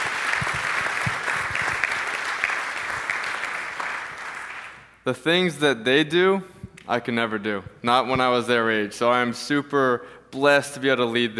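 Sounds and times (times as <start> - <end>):
church audience applauding: 0.0 - 4.9
speech: 5.0 - 11.3.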